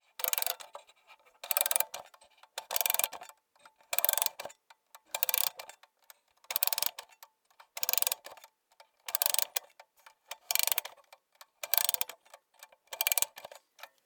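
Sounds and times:
mechanical watch winding: 0:00.2 - 0:00.8, 0:01.4 - 0:03.3, 0:03.9 - 0:05.7, 0:06.5 - 0:07.2, 0:07.8 - 0:08.4, 0:09.1 - 0:09.7, 0:10.3 - 0:11.0, 0:11.6 - 0:12.2, 0:13.0 - 0:13.6.

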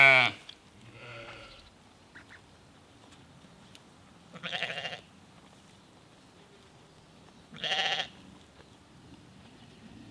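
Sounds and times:
sheep from a small herd in Norway bleating: 0:00.0 - 0:01.7, 0:04.3 - 0:05.1, 0:07.6 - 0:08.2.

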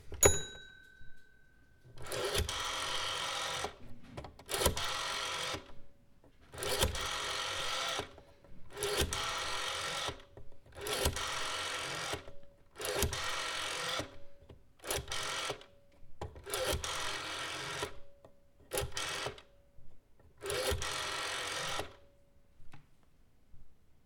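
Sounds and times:
analogue phone dial: 0:02.0 - 0:03.8, 0:04.4 - 0:05.7, 0:06.5 - 0:14.2, 0:14.8 - 0:18.0, 0:18.7 - 0:19.5, 0:20.4 - 0:22.0.

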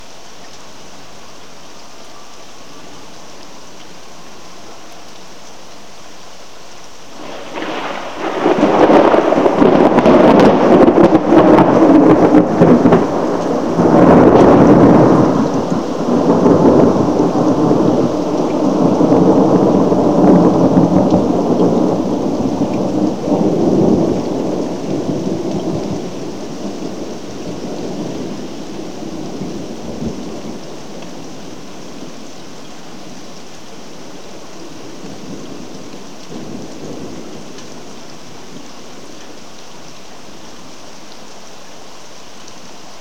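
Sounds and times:
rolling thunder: 0:07.2 - 0:31.4.

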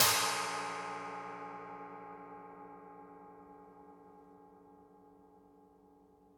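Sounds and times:
brushed China cymbal: 0:00.0 - 0:04.3.

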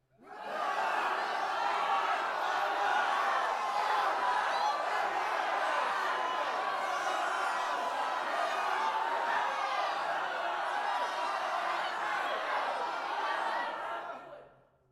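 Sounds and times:
battle riot crowd commotion: 0:00.2 - 0:14.4.

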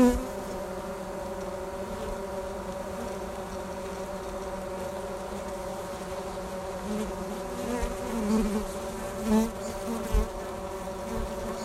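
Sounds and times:
honey bees fanning on top of a hive cover: 0:00.0 - 0:11.6.

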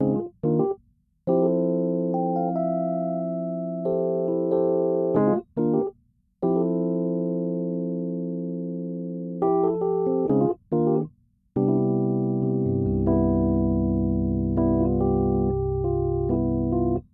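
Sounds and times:
bright smooth jazzy piano in F major: 0:00.0 - 0:17.1.

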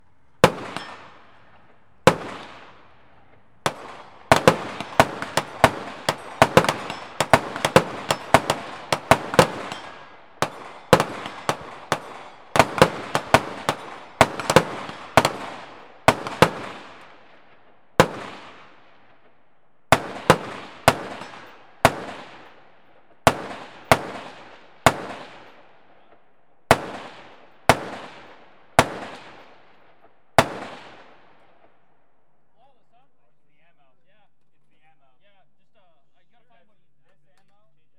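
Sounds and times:
gunshots at a shooting range: 0:00.4 - 0:19.3, 0:19.9 - 0:22.6, 0:23.2 - 0:26.1, 0:26.7 - 0:31.7.

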